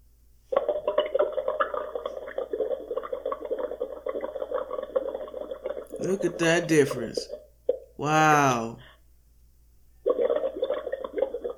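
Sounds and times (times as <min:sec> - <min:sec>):
bubbles blown through a straw into a glass of water: 0:00.5 - 0:06.4, 0:10.0 - 0:11.5
speech: 0:06.0 - 0:07.4, 0:08.0 - 0:08.9.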